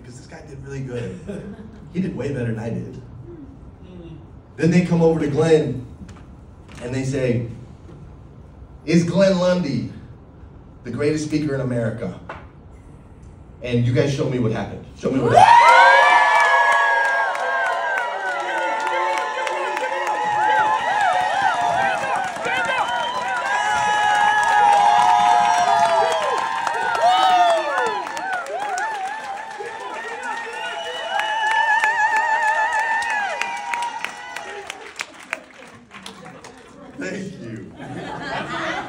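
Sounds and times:
speech: 0:00.3 - 0:03.1, 0:04.6 - 0:05.9, 0:06.8 - 0:07.6, 0:08.8 - 0:10.0, 0:10.8 - 0:12.4, 0:13.6 - 0:15.9
large crowd cheering and screaming: 0:15.2 - 0:35.0
high-pitched shrieks and whoops: 0:15.3 - 0:34.7
laughter: 0:34.5 - 0:38.8.

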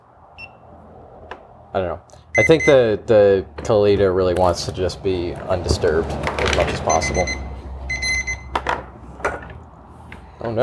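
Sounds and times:
speech: 0:01.7 - 0:07.4
kitchen timer electronic beeping: 0:02.4 - 0:02.8, 0:06.9 - 0:08.5.

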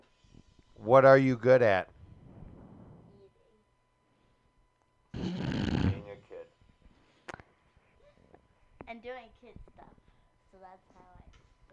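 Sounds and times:
speech: 0:00.8 - 0:01.9
loud raspy snore: 0:05.2 - 0:06.2.

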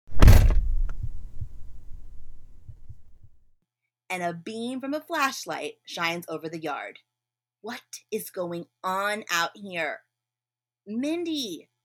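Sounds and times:
front door banging open with heavy impact: 0:00.1 - 0:03.3
low lingering rumble: 0:00.1 - 0:03.4
speech: 0:04.1 - 0:10.1, 0:10.9 - 0:11.8.

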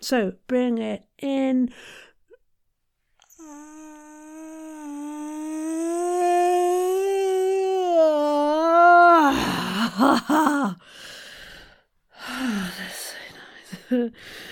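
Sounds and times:
speech: 0:00.0 - 0:02.1, 0:09.3 - 0:11.2, 0:13.9 - 0:14.5
person yawning: 0:03.2 - 0:10.8.

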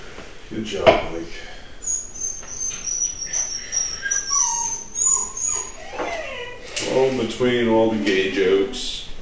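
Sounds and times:
speech: 0:00.5 - 0:01.6, 0:07.0 - 0:08.9
dog whimpering: 0:01.8 - 0:07.0.

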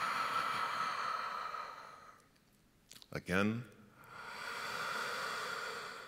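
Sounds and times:
person exhaling during a seated breathing exercise: 0:00.0 - 0:02.2, 0:04.1 - 0:06.0
speech: 0:03.1 - 0:03.8.

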